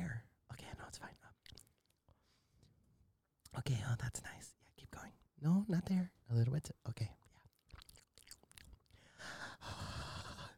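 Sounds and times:
mouth clicking sounds: 0:01.4 - 0:02.0, 0:07.5 - 0:09.0
speech: 0:03.6 - 0:07.2
heavy breathing: 0:09.0 - 0:10.5.

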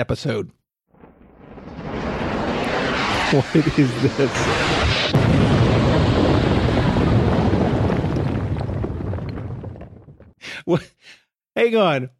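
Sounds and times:
speech: 0:00.0 - 0:00.6, 0:03.3 - 0:05.4, 0:10.7 - 0:11.0, 0:11.6 - 0:12.1
explosion sound effect with deep roaring rumble: 0:00.9 - 0:10.4.

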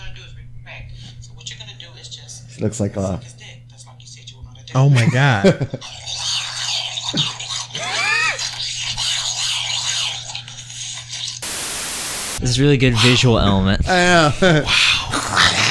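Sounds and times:
speech: 0:02.6 - 0:03.6, 0:04.7 - 0:06.0, 0:12.4 - 0:15.6
cats fighting, yowling and growling: 0:05.8 - 0:09.8, 0:14.5 - 0:15.6
burst of static: 0:11.4 - 0:12.4.

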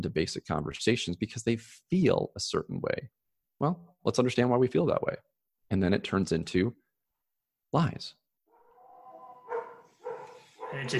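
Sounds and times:
speech: 0:00.0 - 0:06.8, 0:07.7 - 0:08.2, 0:10.7 - 0:10.9
dogs howling: 0:08.5 - 0:10.9.

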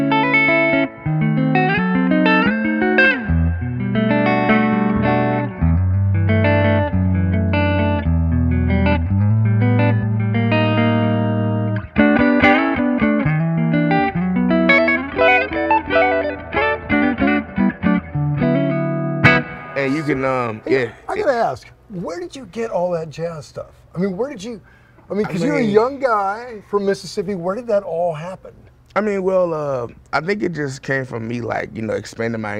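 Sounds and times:
clean electric guitar through an amplifier playing chords and single notes: 0:00.0 - 0:21.1
speech: 0:20.8 - 0:32.5.

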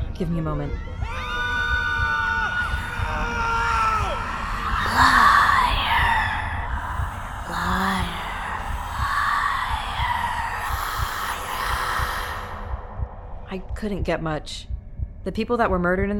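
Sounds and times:
speech: 0:00.2 - 0:01.1, 0:13.5 - 0:16.1
crowd screaming and wailing in agony: 0:00.8 - 0:05.6
anguished moans and gasps: 0:02.6 - 0:13.1.

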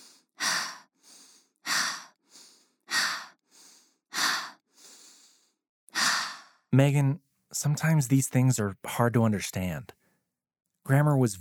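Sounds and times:
slow deep breathing during a breathing exercise: 0:00.0 - 0:06.7
speech: 0:06.7 - 0:10.0, 0:10.9 - 0:11.3.

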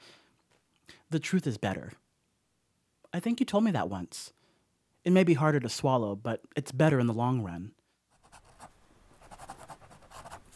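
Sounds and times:
speech: 0:01.1 - 0:02.0, 0:03.1 - 0:04.4, 0:05.0 - 0:07.8
pen writing on paper: 0:08.2 - 0:10.5.

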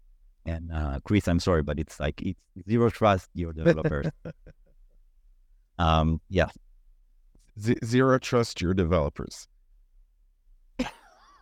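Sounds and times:
speech: 0:00.5 - 0:04.6, 0:05.8 - 0:06.7, 0:07.6 - 0:09.5, 0:10.8 - 0:11.4
laughter: 0:03.4 - 0:04.5
person coughing: 0:10.8 - 0:11.4.

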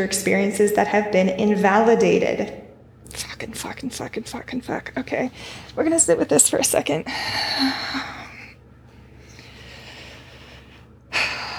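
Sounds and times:
speech: 0:00.0 - 0:08.2
slow deep breathing as a breathing exercise: 0:05.3 - 0:05.8, 0:07.1 - 0:11.5.

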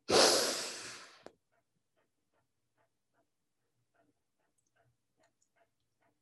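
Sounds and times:
slow exhale of breath: 0:00.1 - 0:01.3.

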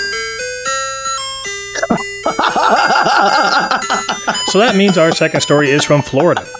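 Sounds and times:
chiming electronic ice cream truck jingle: 0:00.7 - 0:06.5
laughter: 0:01.8 - 0:06.5
speech: 0:01.9 - 0:06.5.

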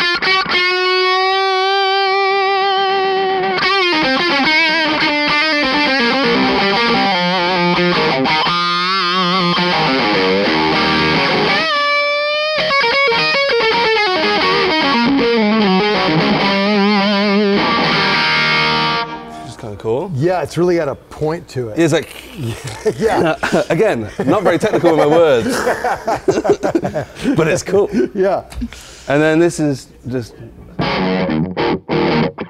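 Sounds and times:
harsh distorted guitar tone through an effects pedal: 0:00.0 - 0:19.4, 0:30.8 - 0:32.4
speech: 0:20.4 - 0:30.6
laughter: 0:22.3 - 0:28.2.

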